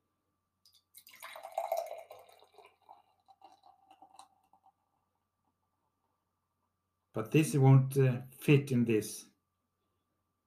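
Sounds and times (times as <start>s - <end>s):
beer pouring into a glass: 0.7s - 4.8s
speech: 7.2s - 9.3s.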